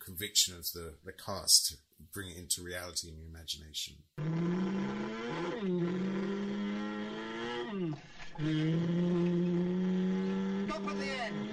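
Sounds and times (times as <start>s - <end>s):
speech: 0.1s - 6.1s, 8.4s - 9.4s
man vocally imitating car engine noises: 4.2s - 11.5s.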